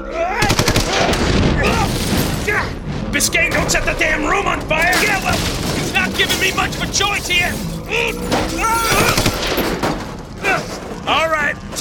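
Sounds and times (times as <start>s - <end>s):
rapid burst of gunshots in an audio drama shootout indoors: 0.4s - 1.9s
dense noisy rumble: 1.1s - 11.7s
speech: 3.2s - 9.3s, 10.6s - 11.7s.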